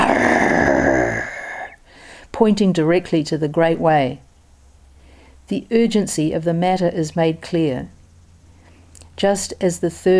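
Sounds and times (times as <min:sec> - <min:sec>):
tiger roaring: 0:00.0 - 0:01.8
speech: 0:02.4 - 0:04.2, 0:05.5 - 0:08.0, 0:09.2 - 0:10.1.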